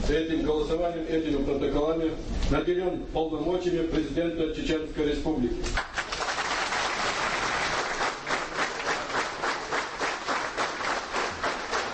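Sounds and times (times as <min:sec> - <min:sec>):
speech: 0:00.1 - 0:05.9
large crowd applauding in a reverberant assembly hall: 0:05.8 - 0:11.9.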